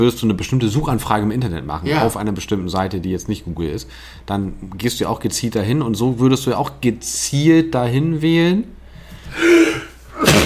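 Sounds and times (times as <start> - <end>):
speech: 0.0 - 10.4
sneeze: 9.4 - 10.4.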